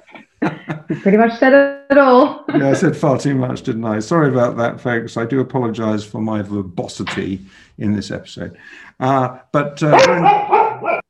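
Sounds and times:
laughter: 0.0s - 1.1s
speech: 0.9s - 10.6s
dog barking and yipping: 9.9s - 11.0s.

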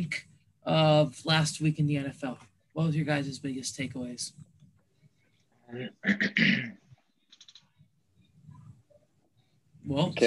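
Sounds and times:
speech: 0.0s - 4.5s, 5.7s - 6.8s, 9.8s - 10.2s
person clearing throat: 5.9s - 7.0s.

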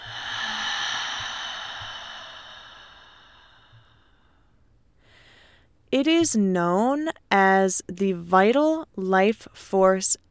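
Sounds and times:
deep breath in and out: 0.0s - 5.7s
speech: 5.9s - 10.2s.

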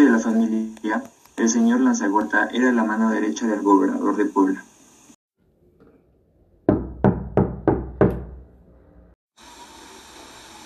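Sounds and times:
steady broadband hiss: 0.0s - 5.2s
speech: 0.3s - 4.7s
quick firm knocking on a door: 6.7s - 8.4s.

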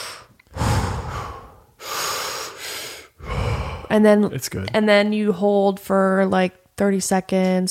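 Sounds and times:
deep breaths during a timed breathing exercise: 0.0s - 4.0s
speech: 3.9s - 7.6s.

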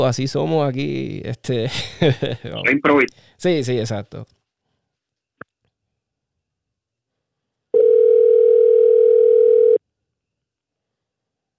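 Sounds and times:
speech: 0.0s - 4.4s
laughter: 1.5s - 3.1s
telephone dial tone while placing a call: 7.8s - 9.8s.

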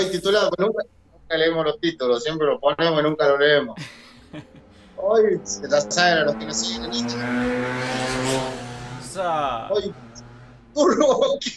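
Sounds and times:
speech: 0.0s - 8.6s, 9.2s - 10.1s, 10.8s - 11.5s
laughter: 3.7s - 6.4s
car passing at high speed: 3.8s - 10.8s.

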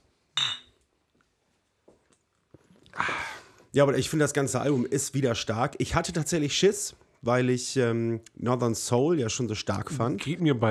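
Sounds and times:
glasses clinking in a toast: 0.4s - 0.8s
speech: 3.7s - 10.7s.

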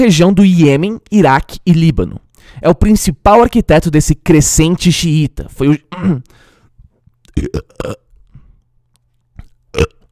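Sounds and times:
speech: 0.0s - 6.4s, 7.4s - 8.0s
short throaty bursts and gulping sounds: 7.2s - 10.1s
loud guttural burp: 7.3s - 8.1s, 9.4s - 10.1s.

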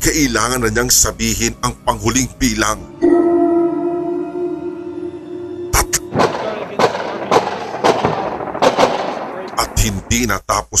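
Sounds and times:
steady noisy background: 0.0s - 10.3s
speech: 0.1s - 3.3s, 9.8s - 10.7s
sharp gunshots: 5.8s - 10.4s.

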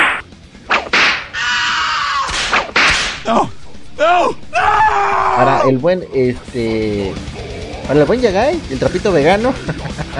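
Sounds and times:
sharp loud whip cracks: 0.0s - 1.3s, 2.2s - 3.2s
speech: 3.3s - 10.1s
laughter: 9.4s - 10.1s.

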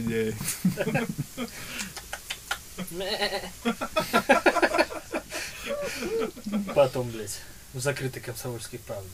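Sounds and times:
speech: 0.0s - 2.0s, 2.8s - 4.8s, 5.7s - 9.1s
laughter: 0.4s - 2.9s, 3.5s - 7.2s
goat bleating: 2.8s - 3.6s.

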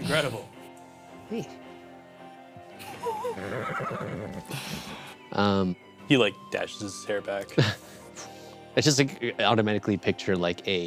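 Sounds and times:
speech: 0.1s - 0.6s, 1.3s - 1.6s, 3.2s - 10.8s
horse neighing: 3.0s - 4.6s.

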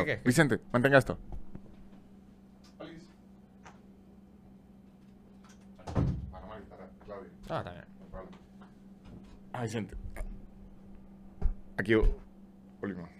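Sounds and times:
speech: 0.0s - 1.4s, 7.1s - 8.4s, 9.6s - 10.0s, 11.8s - 12.2s, 12.8s - 13.1s
steady low hum: 0.0s - 13.1s
door pushed shut with a solid thud: 5.8s - 6.4s.

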